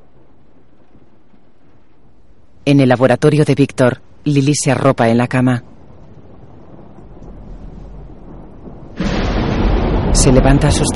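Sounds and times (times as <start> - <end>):
loud clap of thunder with heavy sustained rumble: 0.0 - 3.2, 5.4 - 10.9
speech: 2.6 - 5.7, 10.2 - 10.9.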